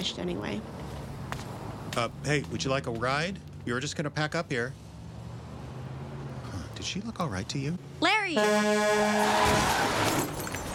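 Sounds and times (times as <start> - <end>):
speech: 0.0 - 0.8, 2.0 - 4.8, 6.8 - 10.4
truck crashing into a pedestrian: 8.8 - 10.7
truck brakes screeching: 9.0 - 10.4.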